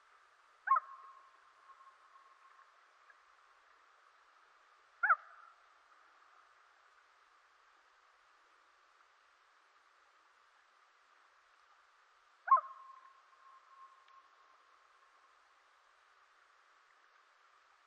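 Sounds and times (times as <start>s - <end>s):
hoots: 0.7s - 2.4s, 5.0s - 5.4s, 12.5s - 14.1s.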